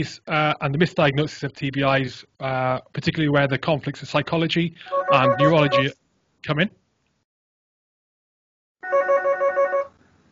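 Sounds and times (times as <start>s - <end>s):
speech: 0.0s - 6.8s
quiet noise: 0.0s - 7.2s
electronic telephone of a phone system ringing: 4.9s - 5.9s, 8.8s - 9.9s.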